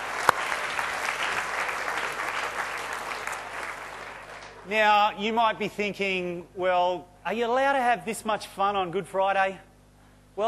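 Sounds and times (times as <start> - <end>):
audience clapping: 0.0 - 4.8
speech: 4.7 - 9.7.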